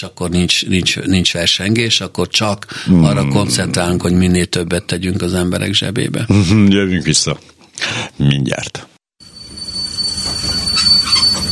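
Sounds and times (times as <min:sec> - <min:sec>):
speech: 0:00.0 - 0:08.9
passenger train wheels squealing as it brakes into a station: 0:09.3 - 0:11.5.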